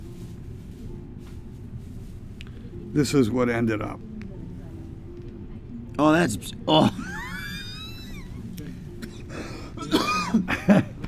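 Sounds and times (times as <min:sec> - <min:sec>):
faint hum: 0:00.0 - 0:11.0
speech: 0:02.9 - 0:04.1, 0:06.0 - 0:07.0
laughter: 0:06.7 - 0:11.0
person coughing: 0:09.0 - 0:10.9
person clearing throat: 0:09.8 - 0:10.8.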